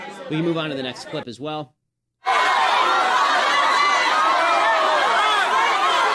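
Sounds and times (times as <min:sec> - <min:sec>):
speech: 0:00.3 - 0:01.8
large crowd screaming and shouting in a room: 0:02.2 - 0:06.1.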